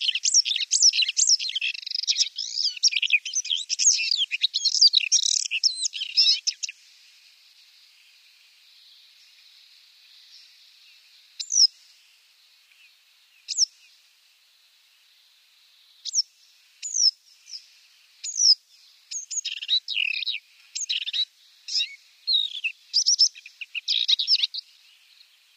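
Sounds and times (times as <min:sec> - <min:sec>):
Paddyfield warbler singing: 0:00.0 - 0:25.5.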